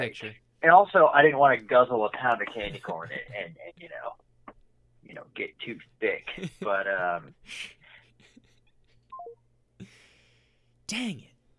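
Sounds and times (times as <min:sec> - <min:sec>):
speech: 0:00.0 - 0:04.2, 0:05.1 - 0:07.8, 0:10.9 - 0:11.3
phone dropped-call tone of descending beeps: 0:09.1 - 0:09.4.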